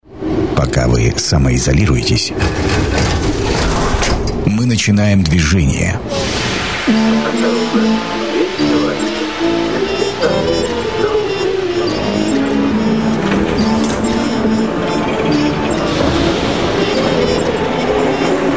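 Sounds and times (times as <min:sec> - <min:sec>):
metro train rolling along rails: 0:00.0 - 0:04.5, 0:05.4 - 0:18.5
speech: 0:00.6 - 0:03.1, 0:04.7 - 0:08.2
metro train wheels rattling: 0:02.3 - 0:04.4, 0:06.5 - 0:18.5.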